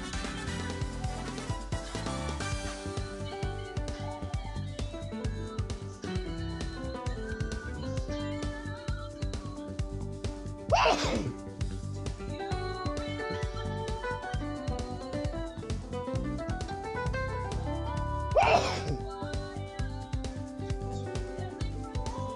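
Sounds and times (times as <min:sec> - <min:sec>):
music: 0:00.0 - 0:22.3
person sneezing: 0:10.7 - 0:11.4, 0:18.4 - 0:19.0.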